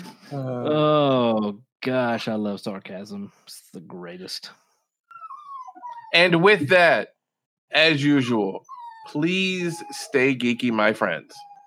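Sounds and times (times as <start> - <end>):
speech: 0.3 - 4.6, 6.1 - 11.5
dog whining: 5.1 - 6.6, 8.6 - 11.6.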